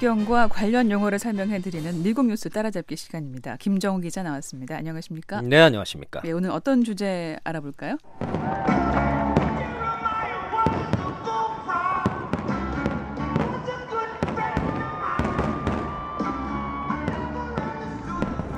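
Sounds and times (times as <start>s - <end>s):
speech: 0.0s - 9.0s
Independence Day fireworks exploding in Washington DC: 8.0s - 18.5s.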